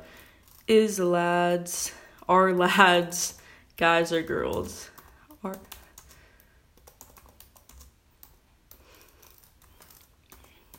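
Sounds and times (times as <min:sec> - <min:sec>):
keyboard typing with one hand: 0:00.2 - 0:00.7, 0:04.3 - 0:10.7
speech: 0:00.7 - 0:05.8.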